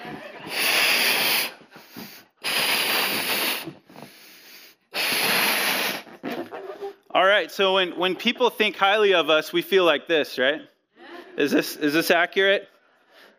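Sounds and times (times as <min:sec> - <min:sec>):
person blowing up a balloon with forceful breaths: 0:00.0 - 0:07.0
quick inhales: 0:00.4 - 0:06.1
speech: 0:07.2 - 0:10.7, 0:11.4 - 0:12.7.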